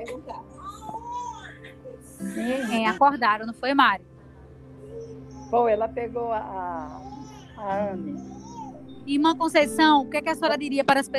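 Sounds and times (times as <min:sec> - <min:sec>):
baby girl crying in wavering wails: 0:00.0 - 0:03.0, 0:04.8 - 0:05.7, 0:06.8 - 0:09.0
speech: 0:02.3 - 0:04.1, 0:05.5 - 0:07.0, 0:07.6 - 0:08.4, 0:09.1 - 0:11.1.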